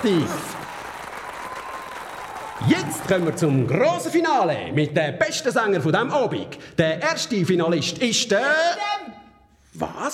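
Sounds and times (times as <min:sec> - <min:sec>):
speech: 0:00.0 - 0:00.6, 0:02.6 - 0:09.1, 0:09.8 - 0:10.1
audience applause: 0:00.0 - 0:03.9.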